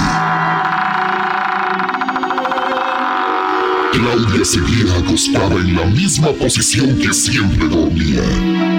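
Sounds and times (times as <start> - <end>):
wooden bedroom door creaking slowly open: 0.0 - 5.6
speech: 3.9 - 8.7.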